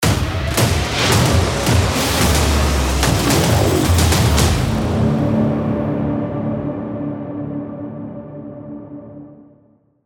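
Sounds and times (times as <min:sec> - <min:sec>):
trailer hit: 0:00.4 - 0:06.7.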